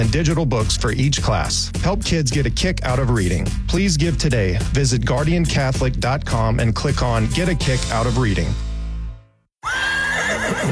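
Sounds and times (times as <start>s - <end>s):
speech: 0.0s - 8.7s
horse neighing: 9.6s - 10.7s.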